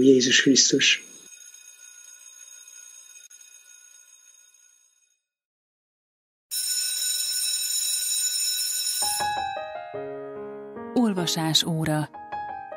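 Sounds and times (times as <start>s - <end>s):
speech: 0.0s - 1.1s, 11.3s - 12.2s
bright electric bell ringing: 0.0s - 5.2s, 6.5s - 9.9s.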